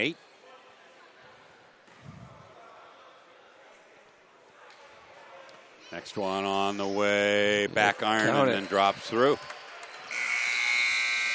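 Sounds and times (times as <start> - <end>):
speech: 0.0 - 0.2, 5.9 - 9.6
electronic buzzer ending a basketball quarter: 10.1 - 11.3.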